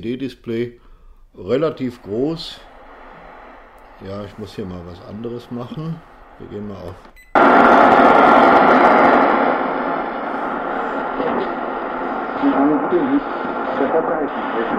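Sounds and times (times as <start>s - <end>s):
speech: 0.0s - 2.7s, 4.0s - 9.3s, 12.4s - 14.7s
shortwave broadcast voice: 1.4s - 7.1s, 8.6s - 14.7s
Tecsun S-2000 world band radio receiver shortwave hiss and static: 1.4s - 14.7s.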